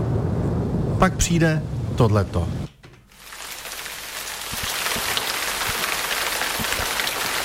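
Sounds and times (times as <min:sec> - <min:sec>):
speech: 0:01.0 - 0:02.6
rain falling outside an open window: 0:02.8 - 0:07.4.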